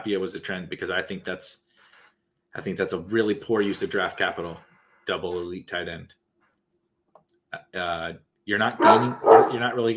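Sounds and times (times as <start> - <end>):
speech: 0.0 - 1.7, 2.6 - 6.2, 7.5 - 9.9
dogs barking: 8.8 - 9.9.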